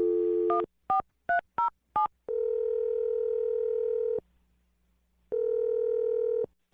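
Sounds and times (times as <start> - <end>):
telephone dial tone: 0.0 - 0.6, 2.3 - 4.2, 5.3 - 6.5.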